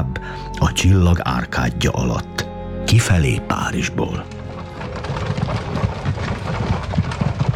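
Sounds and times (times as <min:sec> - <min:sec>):
speech: 0:00.6 - 0:04.4
horses galloping out of Paris: 0:03.6 - 0:07.5.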